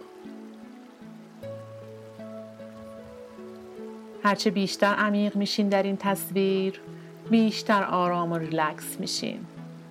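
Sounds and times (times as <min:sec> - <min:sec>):
gentle sustained musical tones: 0:00.0 - 0:09.8
steady rain pattering on a hard surface: 0:00.0 - 0:09.8
speech: 0:04.2 - 0:09.5.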